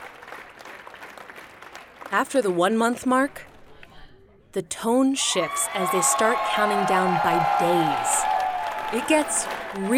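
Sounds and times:
large crowd applauding in a room: 0:00.0 - 0:02.2, 0:05.7 - 0:09.9
speech: 0:02.1 - 0:03.5, 0:04.5 - 0:08.3, 0:08.9 - 0:09.9.

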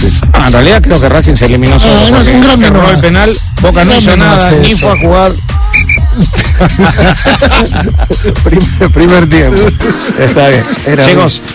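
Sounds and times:
speech: 0:00.5 - 0:11.5
dense crowd noise and overlapping voices: 0:04.0 - 0:06.3
high whistle blasts: 0:04.6 - 0:06.1
laughter: 0:06.0 - 0:08.9, 0:09.5 - 0:11.0.

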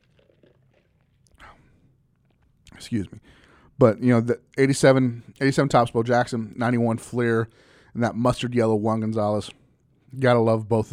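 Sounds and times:
slurp: 0:00.0 - 0:02.5
wet swallowing: 0:00.0 - 0:02.6
person sipping water: 0:00.0 - 0:02.8
speech: 0:02.8 - 0:10.9.

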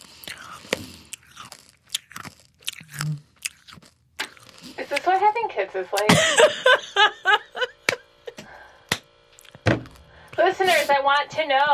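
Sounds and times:
Tic Tac mints being chewed and crunched: 0:00.0 - 0:05.4, 0:09.3 - 0:11.7
speech: 0:05.0 - 0:07.3, 0:10.6 - 0:11.7
laughter: 0:06.0 - 0:08.4.

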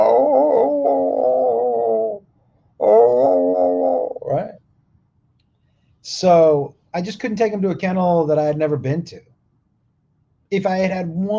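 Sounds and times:
dog howling: 0:00.0 - 0:02.2, 0:02.8 - 0:04.5
speech: 0:06.2 - 0:09.3, 0:10.5 - 0:11.3.

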